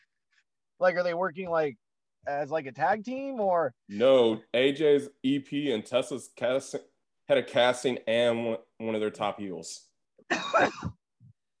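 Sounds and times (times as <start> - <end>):
speech: 0.8 - 11.0
rough raspy cough: 10.3 - 11.0.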